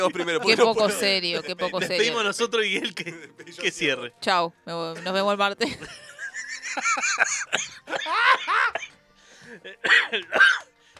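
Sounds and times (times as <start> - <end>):
laughter: 0.0 - 3.5, 4.9 - 8.9, 9.5 - 10.6
speech: 0.0 - 6.1, 6.8 - 8.9, 9.5 - 10.7
cough: 7.4 - 9.0, 9.6 - 10.7.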